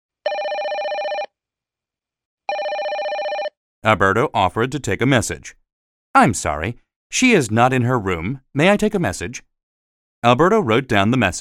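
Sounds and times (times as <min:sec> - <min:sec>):
telephone ringing in a hotel guest room: 0:00.2 - 0:01.3, 0:02.5 - 0:03.6
speech: 0:03.8 - 0:09.5, 0:10.2 - 0:11.3.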